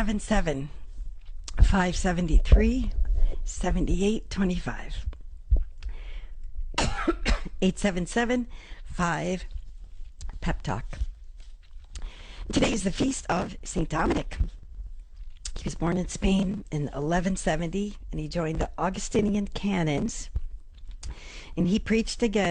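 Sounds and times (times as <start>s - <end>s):
speech: 0.0s - 0.8s, 1.6s - 5.1s, 7.1s - 9.6s, 10.4s - 11.1s, 12.5s - 14.6s, 15.6s - 20.3s, 21.1s - 22.4s
person coughing after inhaling saliva: 6.8s - 7.6s.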